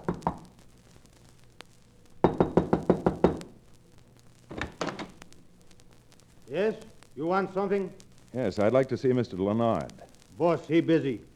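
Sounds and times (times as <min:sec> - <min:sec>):
knocking on a wooden door: 0:02.2 - 0:03.4
speech: 0:06.5 - 0:11.3.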